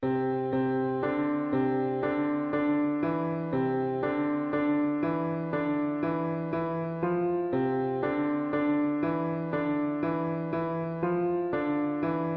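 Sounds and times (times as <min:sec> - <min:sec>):
piano melody: 0:00.0 - 0:12.3.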